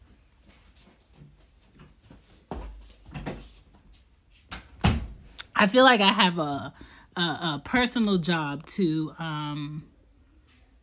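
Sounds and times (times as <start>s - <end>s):
door closing with heavy clunks and a bang: 4.8s - 5.2s
speech: 5.6s - 9.9s.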